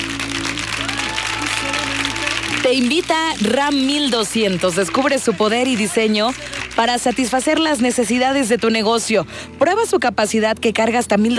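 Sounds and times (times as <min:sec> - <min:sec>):
crowd applauding: 0:00.0 - 0:09.2
speech: 0:02.6 - 0:11.3.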